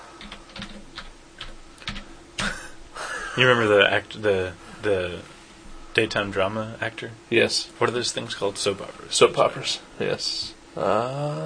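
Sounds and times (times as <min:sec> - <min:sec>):
typing on a computer keyboard: 0:00.2 - 0:02.5
speech: 0:03.4 - 0:05.4, 0:06.0 - 0:11.4.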